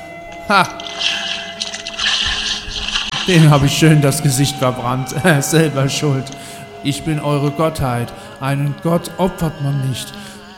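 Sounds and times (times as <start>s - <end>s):
speech: 0.5s - 1.2s, 3.3s - 10.5s
water splashing and pouring out in a hissing rush: 0.6s - 4.2s.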